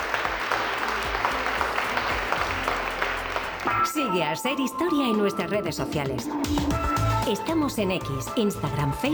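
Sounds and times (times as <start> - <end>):
audience applause: 0.0 - 4.0
speech: 3.8 - 9.1.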